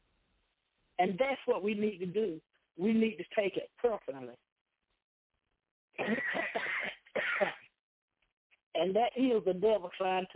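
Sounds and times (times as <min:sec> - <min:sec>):
speech: 0:01.0 - 0:04.4, 0:06.0 - 0:06.6, 0:08.8 - 0:10.3
person coughing in a harsh fit: 0:06.0 - 0:07.7.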